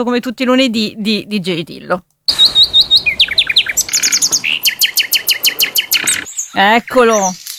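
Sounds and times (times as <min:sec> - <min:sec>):
speech: 0:00.0 - 0:02.1, 0:06.6 - 0:07.4
nightingale singing: 0:02.3 - 0:07.5.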